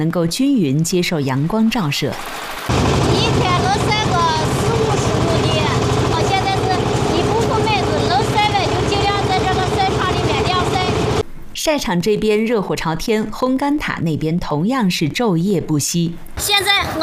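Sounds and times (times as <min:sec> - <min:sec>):
speech: 0:00.0 - 0:03.1, 0:11.6 - 0:17.0
tractor engine towing grain-turning equipment: 0:02.7 - 0:11.2.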